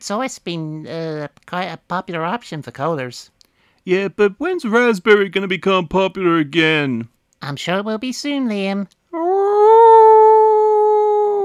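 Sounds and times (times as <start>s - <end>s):
speech: 0.0s - 9.4s
person howling in imitation of a dog: 9.2s - 11.4s.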